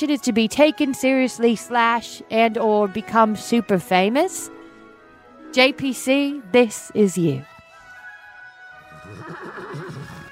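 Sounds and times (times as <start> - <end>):
speech: 0.0 - 4.6, 5.5 - 7.5
horse neighing: 8.8 - 10.3.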